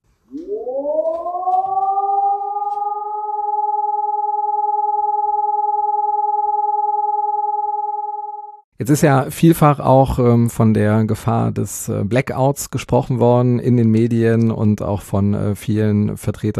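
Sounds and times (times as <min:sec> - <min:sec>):
civil defense siren all-clear signal: 0:00.3 - 0:08.7
speech: 0:08.8 - 0:16.5.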